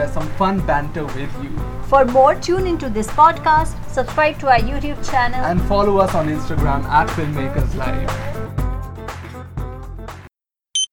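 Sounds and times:
speech: 0.0s - 8.3s
busy music: 0.0s - 10.2s
high-pitched electronic alarm clock beep: 10.8s - 10.9s.

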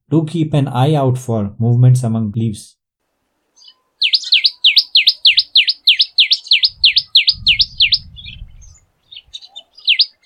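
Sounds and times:
speech: 0.1s - 2.8s
tailorbird singing sharp high ringing notes: 3.6s - 10.2s.

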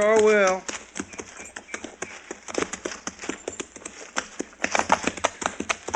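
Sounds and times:
speech: 0.0s - 0.7s
horse hooves clip-clopping at a brisk walk: 0.0s - 5.9s.

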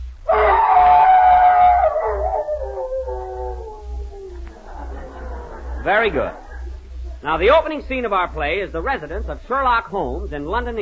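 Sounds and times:
man imitating a hound's howl: 0.3s - 4.3s
laughter: 4.3s - 7.5s
speech: 5.8s - 6.4s, 7.2s - 10.8s.

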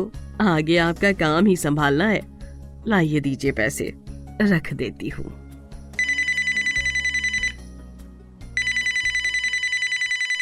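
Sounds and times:
speech: 0.0s - 5.4s
phone ringing: 6.0s - 7.7s, 8.6s - 10.3s.

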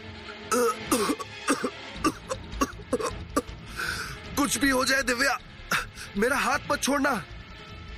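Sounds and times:
person coughing from smoke: 0.5s - 3.5s
raspy strained breaths: 3.4s - 4.3s
speech: 4.5s - 5.5s, 6.1s - 7.3s.

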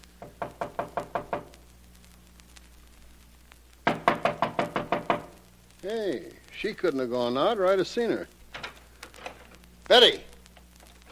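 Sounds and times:
low hum: 0.0s - 11.1s
knocking on a door: 0.2s - 1.5s, 3.9s - 5.3s
speech: 5.8s - 8.4s, 9.9s - 10.3s.

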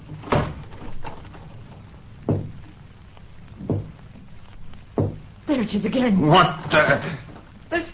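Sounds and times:
faint room hiss: 0.0s - 7.9s
dull knocks on a wooden door: 2.3s - 2.6s, 3.6s - 4.0s, 4.9s - 5.3s
speech: 5.6s - 7.9s.

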